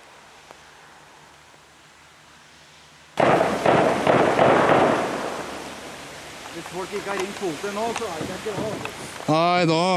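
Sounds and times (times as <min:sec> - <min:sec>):
loud sharp gunshots: 0:03.2 - 0:05.5
speech: 0:06.6 - 0:09.9.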